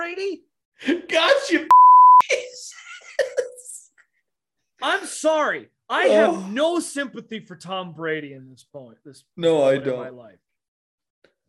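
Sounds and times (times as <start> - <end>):
speech: 0.1 - 3.5, 4.8 - 10.4
censor beep over a swear word: 1.7 - 2.2.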